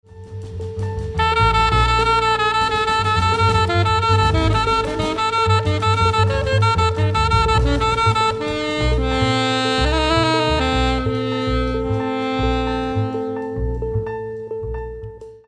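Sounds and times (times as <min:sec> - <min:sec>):
piano in D minor: 0:00.0 - 0:15.4
quarter-tone guitar in D minor: 0:00.1 - 0:15.2.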